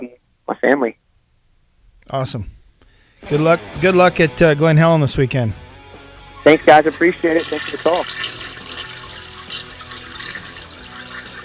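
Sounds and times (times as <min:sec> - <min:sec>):
speech: 0:00.6 - 0:01.0, 0:02.1 - 0:02.6, 0:03.2 - 0:05.6, 0:06.4 - 0:08.4
toilet flushing: 0:06.5 - 0:11.4.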